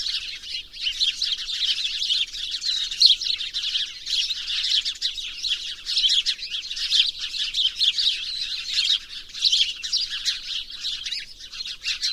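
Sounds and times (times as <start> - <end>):
House sparrows Passer domesticus chirping in a dense chorus: 0.0 - 12.1.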